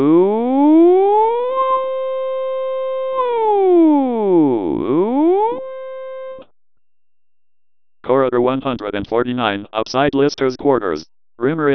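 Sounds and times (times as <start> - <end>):
loud electronic alarm with warbling siren sweeps and whistling tones: 0.0 - 6.5
speech: 8.6 - 11.7.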